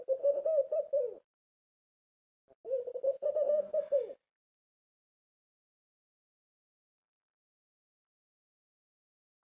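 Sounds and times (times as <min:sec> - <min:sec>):
dove cooing from a window: 0:00.0 - 0:01.3, 0:02.6 - 0:04.3.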